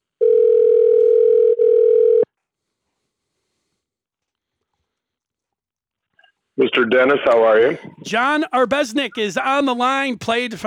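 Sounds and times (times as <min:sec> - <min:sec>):
electronic ringback tone on an outgoing phone call: 0:00.2 - 0:02.3
speech: 0:06.8 - 0:10.6.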